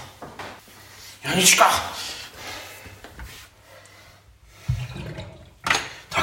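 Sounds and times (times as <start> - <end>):
speech: 1.4 - 2.0
water draining with hiss and gurgles: 4.6 - 6.1.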